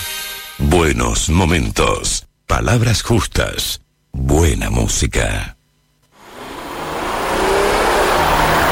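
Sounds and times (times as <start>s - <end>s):
speech: 0.7s - 5.6s
car engine revving: 6.1s - 8.7s.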